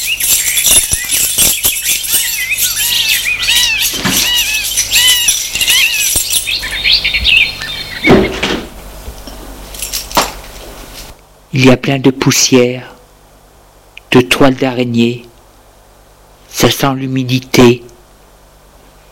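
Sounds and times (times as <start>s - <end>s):
keys jangling: 0.0s - 6.7s, 9.7s - 10.3s
birds chirping outdoors: 0.0s - 9.6s
speech: 11.6s - 12.9s, 14.1s - 15.3s, 16.6s - 17.8s.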